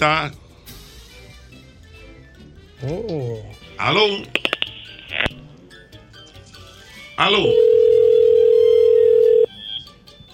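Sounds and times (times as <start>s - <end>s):
speech: 2.8s - 4.5s, 7.2s - 7.8s
telephone tone during an outgoing call: 7.2s - 9.8s.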